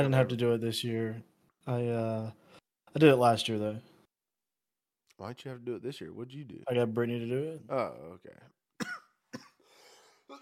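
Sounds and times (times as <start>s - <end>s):
speech: 0.0s - 3.9s, 5.2s - 9.0s
person clearing throat: 8.8s - 9.6s
person coughing: 8.8s - 10.4s.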